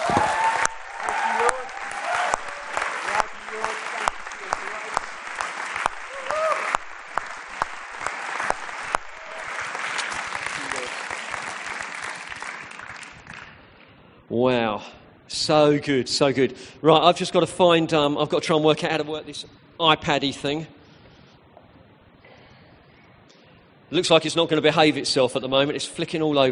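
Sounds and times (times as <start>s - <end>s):
large crowd clapping enthusiastically: 0.0s - 13.8s
speech: 15.5s - 20.8s, 23.9s - 26.4s.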